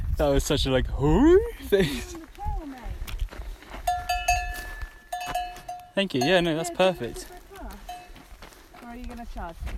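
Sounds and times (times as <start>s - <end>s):
speech: 0.2s - 2.3s, 6.0s - 7.4s, 9.3s - 9.7s
cow hooves shuffling over the ground outdoors: 1.4s - 9.7s
cow bell clanking: 3.8s - 8.2s.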